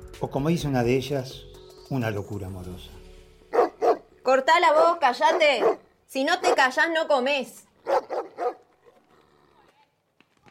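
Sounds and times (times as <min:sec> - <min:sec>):
speech: 0:00.2 - 0:03.0, 0:04.2 - 0:08.1
dog barking sharply: 0:03.5 - 0:04.1, 0:04.8 - 0:06.6, 0:07.8 - 0:08.7.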